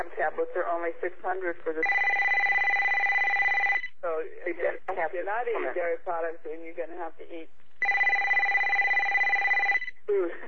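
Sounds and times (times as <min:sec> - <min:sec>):
speech: 0:00.1 - 0:02.2, 0:04.0 - 0:07.6, 0:10.1 - 0:10.4
mobile phone ringtone: 0:01.8 - 0:03.9, 0:07.8 - 0:09.9.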